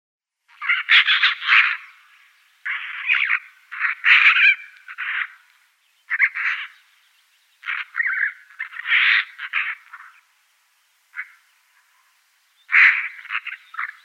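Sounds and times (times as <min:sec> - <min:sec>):
Eurasian magpie Pica pica giving harsh rasping chatter calls: 0:00.6 - 0:01.9, 0:02.7 - 0:05.4, 0:07.6 - 0:10.2, 0:12.7 - 0:14.0.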